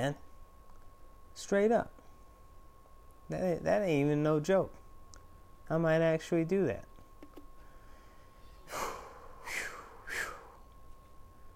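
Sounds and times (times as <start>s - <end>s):
speech: 0.0s - 0.2s, 1.4s - 2.0s, 3.3s - 4.8s, 5.7s - 6.9s
faint steady hum: 0.0s - 11.5s
person breathing heavily, gasping for breath: 8.7s - 10.6s.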